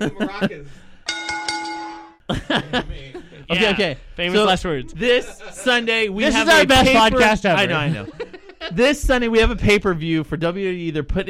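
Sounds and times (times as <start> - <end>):
laughter: 0.0 - 0.8, 2.3 - 9.0
speech: 0.0 - 0.8, 2.5 - 11.2
wrestling ring bell dinging: 1.1 - 2.2.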